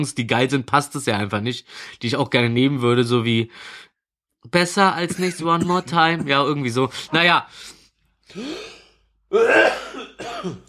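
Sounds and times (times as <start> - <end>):
speech: 0.0 - 10.6
person coughing fit with raspy bursts: 5.0 - 6.6, 8.4 - 10.6
gasping breaths: 6.9 - 9.1.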